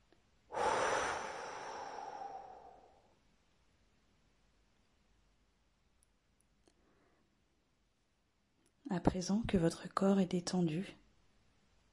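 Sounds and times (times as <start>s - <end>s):
deep breath in through the nose, out through the mouth: 0.5s - 3.2s
speech: 8.9s - 11.0s.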